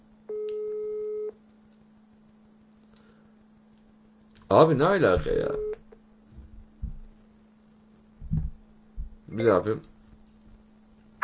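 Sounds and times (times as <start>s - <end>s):
telephone ringback tone from an unanswered call: 0.3s - 1.3s
speech: 4.5s - 5.7s, 9.4s - 9.9s.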